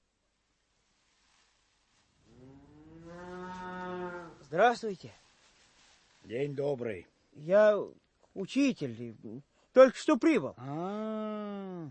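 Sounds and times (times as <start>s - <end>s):
cow mooing: 2.4s - 4.4s
speech: 4.5s - 5.2s, 6.3s - 11.8s.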